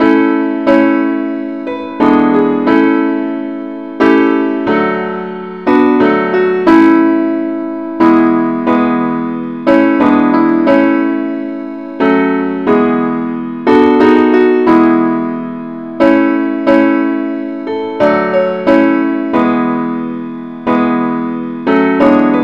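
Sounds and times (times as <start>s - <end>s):
simple accompaniment in key A: 0.0s - 22.4s.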